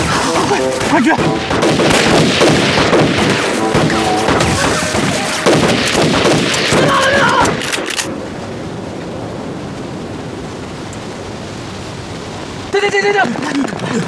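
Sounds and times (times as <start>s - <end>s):
dense continuous volley of gunfire in battle: 0.0s - 7.6s
voices shouting in battle: 0.0s - 7.9s
booming blasts in battle: 0.0s - 12.7s
speech: 0.5s - 3.2s, 12.9s - 14.0s.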